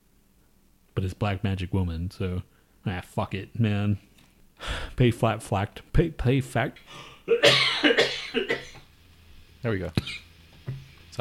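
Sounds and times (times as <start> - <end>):
speech: 1.0 - 8.5, 9.6 - 10.2
harsh raspy coughing fit: 7.3 - 8.9, 10.0 - 10.3.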